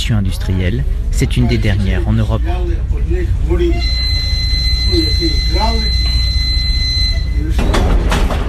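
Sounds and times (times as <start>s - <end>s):
narrow-gauge passenger train rumbling on a single line: 0.0s - 8.4s
speech: 0.1s - 4.1s, 4.9s - 6.2s, 7.4s - 8.4s
high-pitched squeal: 3.5s - 7.5s.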